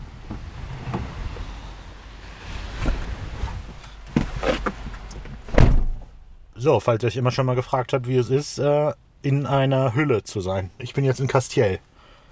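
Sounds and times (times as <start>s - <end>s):
car door slamming as someone gets in: 0.0s - 6.5s
low rumbling background: 0.0s - 6.7s
dull thumps and rustles of someone climbing into a car: 0.2s - 6.5s
speech: 6.6s - 11.9s.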